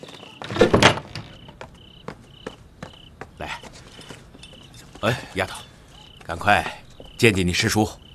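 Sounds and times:
wooden door being shut: 0.5s - 1.4s
speech: 5.1s - 5.7s, 6.3s - 8.0s.

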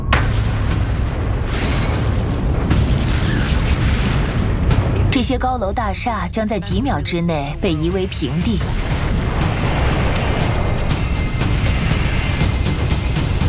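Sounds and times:
massive asteroid impact explosion rumbling: 0.1s - 5.3s, 8.6s - 13.4s
speech: 5.3s - 9.0s.

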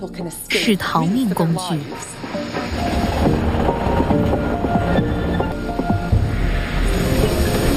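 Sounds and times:
speech: 0.0s - 5.2s
passenger train rumbling along the tracks: 0.5s - 7.7s
train wheels clattering over rail joints: 1.0s - 7.7s.

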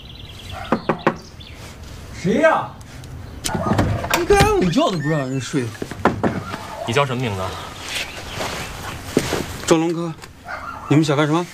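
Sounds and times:
police officers knocking firmly on a house door: 0.7s - 1.2s, 5.8s - 6.6s
speech: 2.2s - 2.8s, 3.5s - 6.0s, 6.9s - 7.8s, 9.7s - 10.3s, 10.9s - 11.5s.

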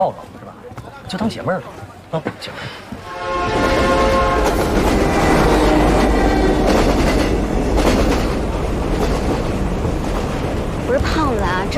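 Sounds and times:
speech: 0.0s - 0.4s, 1.1s - 3.6s, 10.9s - 11.7s
brief horn-like tone: 3.0s - 7.0s
moving train wheels clickety-clack over the rails: 3.5s - 11.7s.

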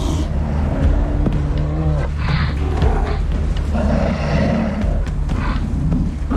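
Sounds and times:
two young male polar bears growling, grunting and roaring while play-fighting: 0.0s - 6.3s.

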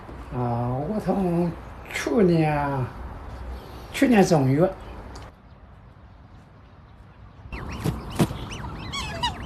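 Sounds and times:
speech: 0.3s - 3.0s, 4.0s - 4.9s
black swans honking, kept and fed by a keeper: 7.6s - 9.4s.

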